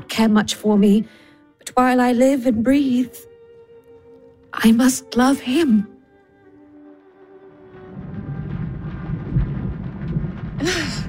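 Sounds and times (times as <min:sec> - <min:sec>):
speech: 0:00.1 - 0:03.3, 0:04.6 - 0:05.9
steady rumbling rain: 0:06.4 - 0:11.0
deep thunder rolls: 0:07.5 - 0:11.0.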